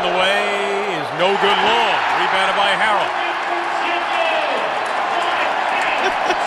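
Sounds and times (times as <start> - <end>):
large arena crowd cheering after missed free throws: 0.0 - 6.4
speech: 1.2 - 3.2
laughter: 5.6 - 6.4.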